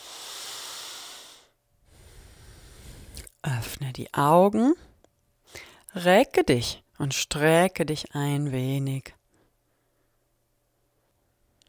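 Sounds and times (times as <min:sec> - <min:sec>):
deep breath: 0:00.0 - 0:03.3, 0:04.8 - 0:05.9, 0:09.3 - 0:10.3
speech: 0:03.8 - 0:04.9, 0:06.0 - 0:09.2.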